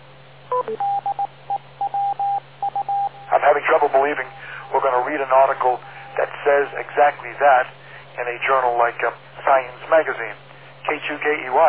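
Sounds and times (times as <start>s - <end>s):
amateur radio repeater time-out tone: 0.5s - 7.3s
speech: 0.6s - 1.1s, 3.5s - 11.6s.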